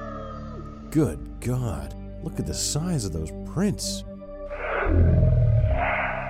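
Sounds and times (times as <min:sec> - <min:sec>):
speech: 0:00.9 - 0:04.1, 0:04.9 - 0:05.2
deep guttural werewolf roar: 0:04.5 - 0:06.2.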